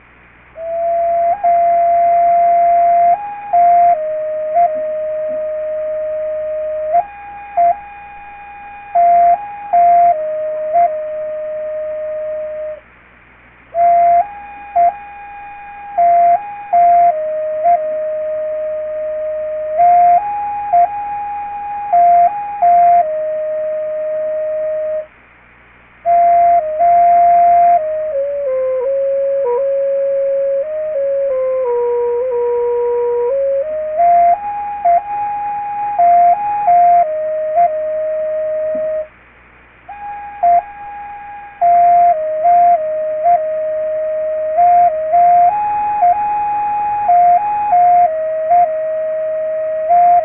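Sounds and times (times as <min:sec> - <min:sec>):
Sioux flute: 0:00.6 - 0:12.8, 0:13.7 - 0:25.1, 0:26.0 - 0:39.1, 0:39.9 - 0:50.2.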